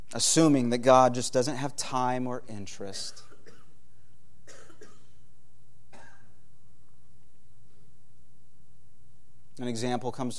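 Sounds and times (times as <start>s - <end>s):
faint low hum: 0.0s - 10.3s
speech: 0.1s - 3.3s, 9.6s - 10.3s
rough coughs from a cold: 3.1s - 3.8s, 4.4s - 5.3s, 5.9s - 6.4s.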